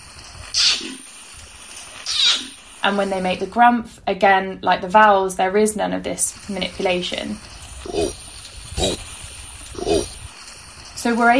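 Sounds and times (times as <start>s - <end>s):
orangutan kiss squeaks: 0.5s - 1.0s, 2.0s - 2.6s
speech: 2.8s - 8.2s, 8.8s - 9.1s, 11.0s - 11.3s.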